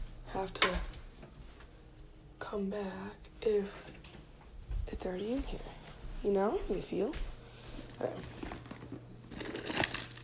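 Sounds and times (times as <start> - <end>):
speech: 0.4 - 0.9, 2.5 - 4.0, 5.0 - 7.3, 8.0 - 8.4
keys jingling: 9.3 - 10.2.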